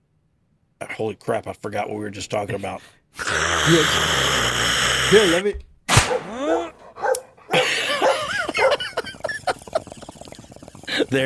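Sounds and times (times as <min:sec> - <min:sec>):
speech: 0:01.0 - 0:04.5, 0:05.1 - 0:06.7
dog barking sharply with yelping whiny tones: 0:06.1 - 0:09.0
laughter: 0:07.5 - 0:11.2.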